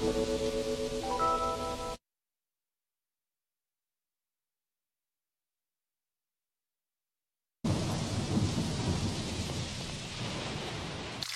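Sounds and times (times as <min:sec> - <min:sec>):
steady hissing rain: 0:00.0 - 0:01.9, 0:07.7 - 0:11.3
deep rumble of thunder: 0:07.7 - 0:11.2.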